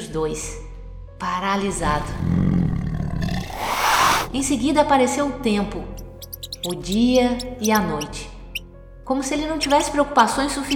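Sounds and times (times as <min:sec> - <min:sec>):
speech: 0:00.1 - 0:02.5, 0:04.3 - 0:06.0, 0:06.6 - 0:08.3, 0:09.1 - 0:10.7
animal roar: 0:01.8 - 0:04.3.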